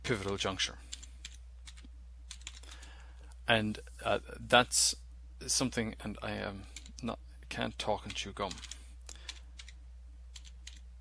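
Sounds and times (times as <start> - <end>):
speech: 0.1 - 1.0, 3.5 - 8.8
typing on a computer keyboard: 0.2 - 2.8, 8.0 - 10.8.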